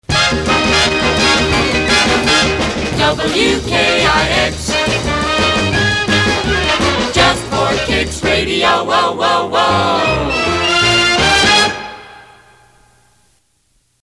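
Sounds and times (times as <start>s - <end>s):
vocal: 1.2s - 11.6s.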